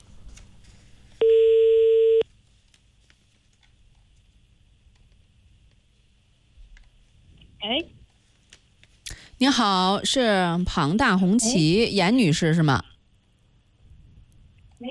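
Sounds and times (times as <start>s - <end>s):
telephone ringback tone while calling a car dealership: 1.2s - 2.2s
speech: 9.4s - 12.9s.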